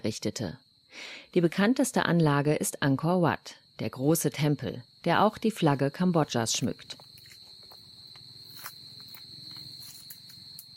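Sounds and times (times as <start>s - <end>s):
speech: 0.0s - 7.0s
high-pitched insect drone: 4.6s - 10.7s
footsteps scuffing on a hard stone temple floor: 6.9s - 10.7s.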